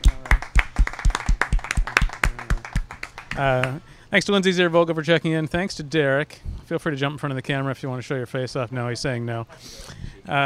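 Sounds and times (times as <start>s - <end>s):
small audience applauding: 0.0s - 3.8s
speech: 3.4s - 10.4s.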